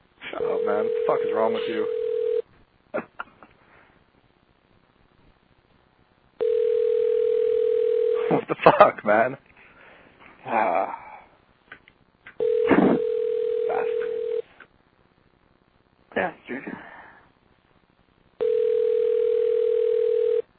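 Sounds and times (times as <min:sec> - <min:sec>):
long steady electronic telephone ringback tones: 0:00.4 - 0:02.4, 0:06.4 - 0:08.3, 0:12.4 - 0:14.4, 0:18.4 - 0:20.5
speech: 0:00.7 - 0:02.0, 0:02.9 - 0:03.1, 0:08.7 - 0:09.5
man muttering: 0:12.7 - 0:13.0.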